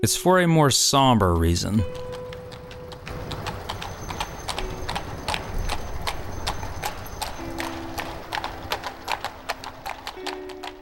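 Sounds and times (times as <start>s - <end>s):
speech: 0.0s - 2.2s
many horses' hooves clopping on a hard street: 1.7s - 10.8s.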